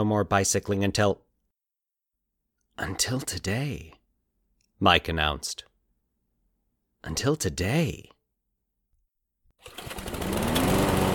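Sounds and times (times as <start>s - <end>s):
speech: 0.0s - 1.2s, 2.8s - 4.0s, 4.8s - 5.7s, 7.0s - 8.1s
small riding lawn mower engine starting: 9.6s - 11.1s.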